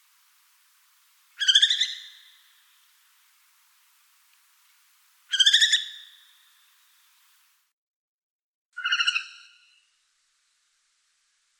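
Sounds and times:
Northern hawk-owl Surnia ulula harsh rasping screeches: 1.4 - 2.3, 5.3 - 6.0.

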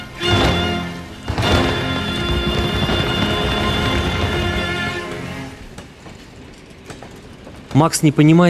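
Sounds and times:
steady tonal whine of steam locomotive: 0.0 - 5.8
steam locomotive rushing past: 0.0 - 6.4
speech: 7.8 - 8.4.

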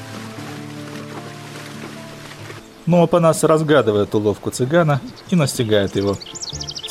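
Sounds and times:
stallion led by the bridle sloshing and splashing through river water: 0.0 - 2.8
constant rushing river flow: 0.0 - 6.8
speech: 2.9 - 6.8.

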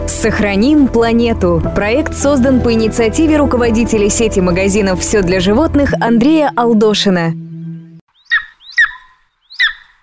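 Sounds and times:
speech: 0.2 - 7.4
golden eagle giving sharp high-pitched yelping calls: 8.2 - 10.0.

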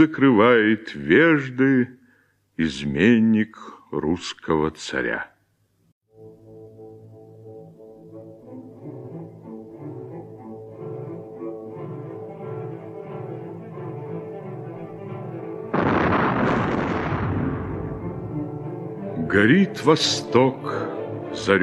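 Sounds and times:
speech: 0.0 - 2.0, 2.6 - 5.3, 19.3 - 21.6
orchestral music: 6.1 - 21.6
loud cannon boom: 15.8 - 18.4.

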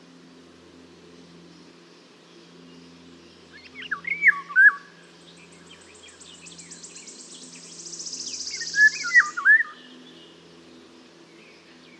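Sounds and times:
Eurasian golden oriole Oriolus oriolus whistling fluty phrase: 6.6 - 9.8.

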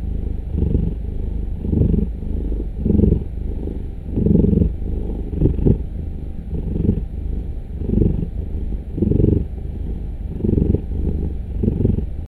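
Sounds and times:
cat purring: 0.0 - 12.2.

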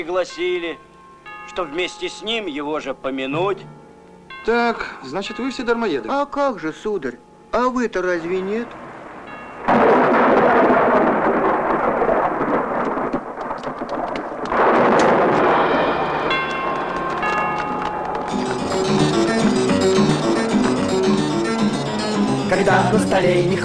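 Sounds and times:
speech: 0.0 - 0.9, 1.5 - 3.8, 4.4 - 8.8, 23.2 - 23.6
music: 2.8 - 4.5, 16.2 - 23.6
loud thunder crashing: 8.8 - 20.0
heavy rain: 8.8 - 20.8.

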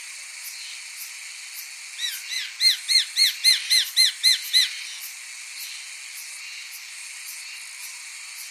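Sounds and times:
Japanese sparrowhawk Accipiter gularis calling in sharp arched notes: 2.1 - 4.8.

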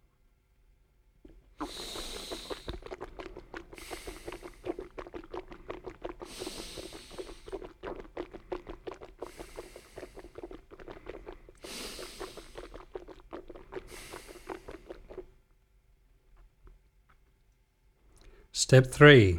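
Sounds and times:
water swishing and gurgling in a mouth: 1.2 - 15.4
air sniffed in and out through the nose: 1.6 - 15.3
speech: 18.6 - 19.3.

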